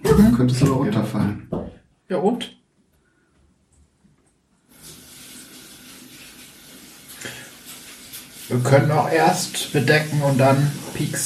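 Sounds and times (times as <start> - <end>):
speech: 0.2 - 1.3, 2.1 - 2.6, 8.5 - 11.2
water running from a tap during handwashing: 4.7 - 11.2.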